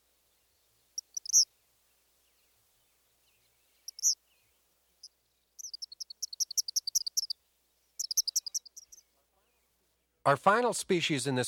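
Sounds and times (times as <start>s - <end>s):
male Eastern Kingbird singing: 1.0s - 1.5s, 3.2s - 4.5s, 5.6s - 7.4s, 8.0s - 9.1s
speech: 10.3s - 11.4s.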